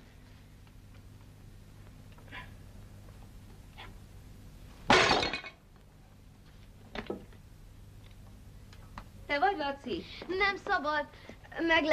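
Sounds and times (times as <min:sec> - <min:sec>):
low hum: 0:00.0 - 0:11.9
crash of breaking glass: 0:04.9 - 0:05.6
speech: 0:09.3 - 0:11.9.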